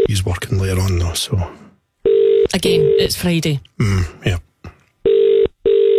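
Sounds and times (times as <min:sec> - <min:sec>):
speech: 0:00.2 - 0:01.6, 0:02.5 - 0:04.4
long steady ringback tones over a phone line: 0:02.0 - 0:03.1, 0:05.0 - 0:05.9.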